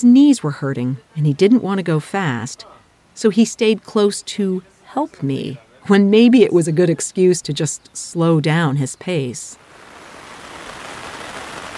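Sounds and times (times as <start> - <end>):
speech: 0.0 - 9.6
heavy rain lashing against windows: 9.6 - 11.7.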